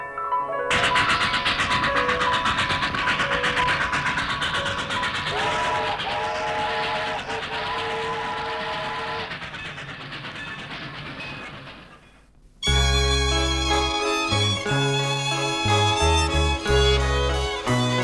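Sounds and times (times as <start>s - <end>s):
rumble of rolling wagons of a departing train: 0.7s - 18.0s
sustained harmonic train whistle: 4.6s - 9.5s, 12.6s - 18.0s.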